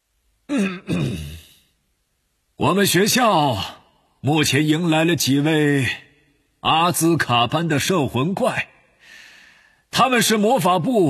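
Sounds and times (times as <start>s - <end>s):
throat clearing: 0.5s - 1.6s
speech: 2.6s - 6.0s, 6.6s - 8.7s, 9.9s - 11.0s.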